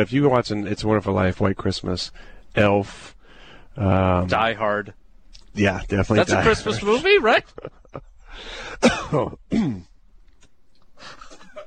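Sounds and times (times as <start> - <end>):
speech: 0.0 - 3.2, 3.8 - 5.0, 5.6 - 9.9
person coughing harshly: 8.8 - 9.9.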